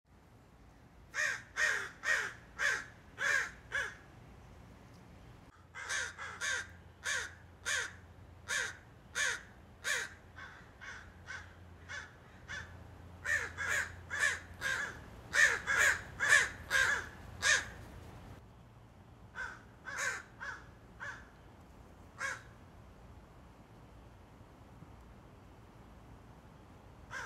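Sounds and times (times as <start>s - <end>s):
crows cawing: 1.1s - 4.0s, 5.6s - 17.9s, 19.4s - 21.4s, 22.2s - 22.6s, 27.1s - 27.2s.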